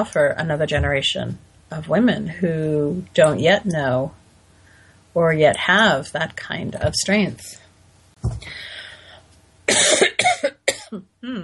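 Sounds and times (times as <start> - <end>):
speech: 0.0 - 4.2, 5.2 - 7.6
short voiced catch of breath: 4.5 - 5.1, 8.4 - 9.3
harsh rasping coughing fit: 9.7 - 11.0.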